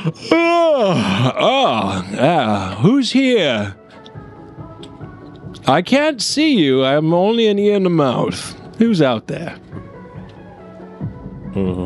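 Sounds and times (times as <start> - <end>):
human voice performing a yawn as a door-handle creature: 0.0 - 2.0
speech: 0.0 - 3.8, 5.6 - 9.6, 11.6 - 11.8.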